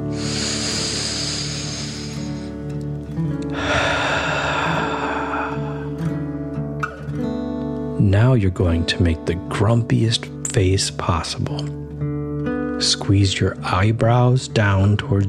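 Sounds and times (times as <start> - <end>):
person breathing in and out slowly: 0.0 - 2.8, 3.4 - 6.5
soft sustained music: 0.0 - 15.2
speech: 8.1 - 12.0, 12.8 - 15.2.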